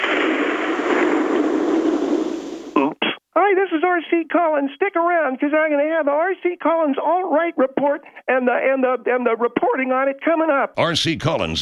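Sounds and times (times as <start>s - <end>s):
dense continuous roar of explosions: 0.0s - 2.8s
speech: 3.5s - 11.5s.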